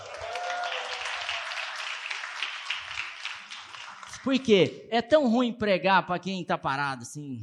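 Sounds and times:
audience applauding: 0.0s - 4.6s
speech: 4.2s - 7.4s.

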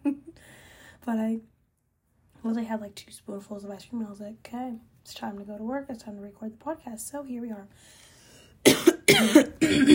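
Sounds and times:
speech: 1.0s - 1.5s, 2.4s - 8.1s, 9.1s - 9.9s
harsh coughs: 8.6s - 9.9s.

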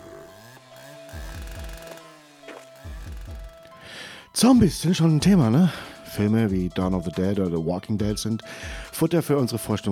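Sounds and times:
chainsaw engine revving indoors: 0.0s - 3.8s
speech: 4.4s - 9.9s.

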